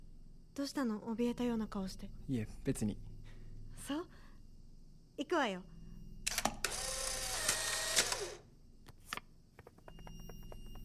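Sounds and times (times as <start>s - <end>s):
speech: 0.6s - 3.1s, 3.8s - 4.2s, 5.2s - 5.7s
instant camera clicks taking a photo: 6.3s - 8.4s.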